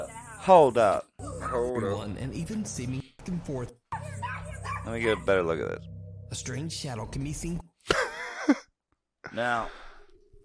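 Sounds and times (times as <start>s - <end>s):
speech: 0.4s - 3.8s, 4.9s - 7.7s, 8.5s - 9.8s
small dogs barking: 1.2s - 1.8s, 3.9s - 5.5s.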